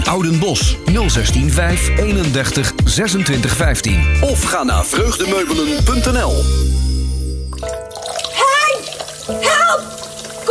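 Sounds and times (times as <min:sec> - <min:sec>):
music: 0:00.0 - 0:10.4
speech: 0:00.1 - 0:06.9
water from a blocked kitchen drain splashing across a flooded kitchen floor: 0:07.6 - 0:10.4.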